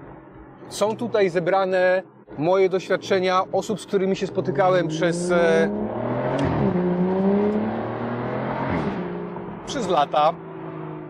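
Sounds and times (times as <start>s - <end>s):
speech: 0.7s - 6.5s, 9.8s - 10.4s
car engine revving while shifting gears: 2.8s - 11.0s.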